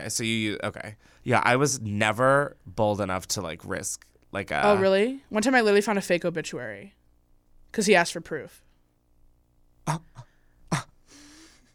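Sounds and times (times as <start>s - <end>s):
speech: 0.0s - 7.0s, 7.7s - 8.6s, 9.9s - 10.9s
sharp breathy gasps: 10.2s - 11.7s.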